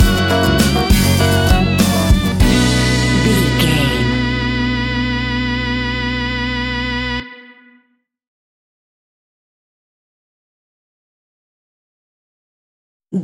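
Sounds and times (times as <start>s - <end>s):
Spanish cafe tropical music stinger: 0.0s - 7.7s.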